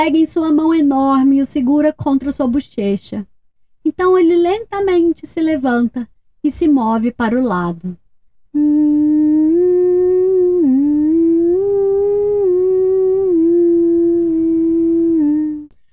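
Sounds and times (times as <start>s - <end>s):
speech: 0.0s - 8.8s
person humming a slow soothing lullaby: 8.6s - 15.7s.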